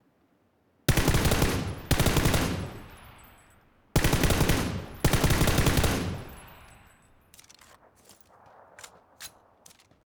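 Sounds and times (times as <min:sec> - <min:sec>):
M416 assault rifle full auto fire: 0:00.9 - 0:03.0, 0:04.0 - 0:06.9.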